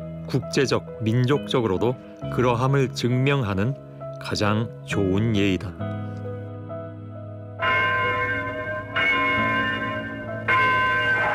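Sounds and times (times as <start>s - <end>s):
speech: 0.3s - 6.2s
large bell tolling with deep resonant strikes: 7.6s - 11.3s.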